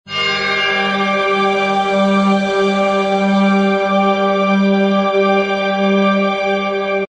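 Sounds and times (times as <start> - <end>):
fantasy chord extended bell: 0.1 - 7.1.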